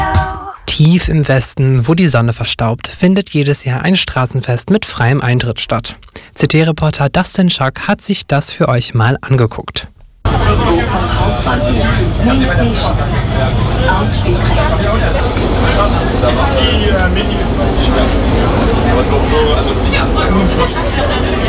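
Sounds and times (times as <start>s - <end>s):
speech: 0.8s - 21.4s
dense crowd chatter in a busy underground station: 10.2s - 21.4s
steady low rumble of trains in an underground station: 10.3s - 21.4s.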